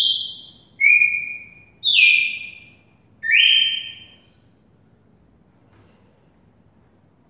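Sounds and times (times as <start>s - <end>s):
female red-cowled cardinal singing whistled notes in Mossoró, Brazil: 0.0s - 4.2s.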